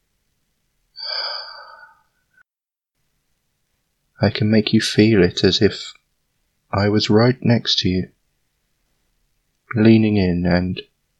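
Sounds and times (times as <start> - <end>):
hot breathy exhale close to the ear: 1.0 - 2.2
speech: 4.2 - 6.0, 6.7 - 8.2, 9.7 - 10.9.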